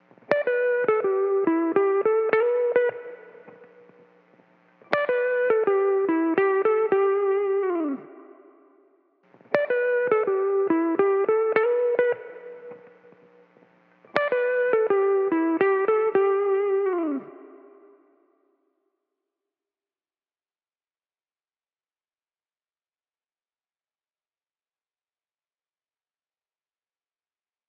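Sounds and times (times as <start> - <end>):
wet electric guitar in E minor: 0.1 - 8.6, 9.3 - 18.0.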